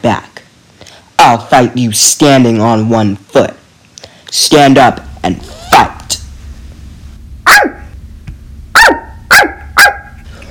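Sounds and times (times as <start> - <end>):
speech: 0.0 - 0.3, 1.2 - 3.6, 4.3 - 6.0
small dog barking: 7.5 - 7.9, 8.7 - 10.2.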